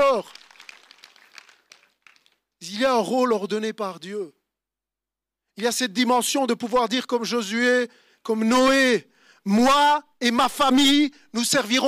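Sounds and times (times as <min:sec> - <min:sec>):
scattered applause from a small audience: 0:00.0 - 0:02.5
speech: 0:00.1 - 0:00.4, 0:02.8 - 0:04.4, 0:05.6 - 0:11.8.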